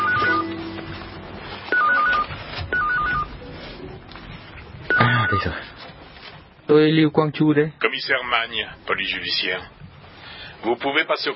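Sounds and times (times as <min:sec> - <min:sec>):
mobile phone ringing with an electronic tone melody: 0:00.0 - 0:05.8
speech: 0:06.7 - 0:09.8, 0:10.6 - 0:11.3.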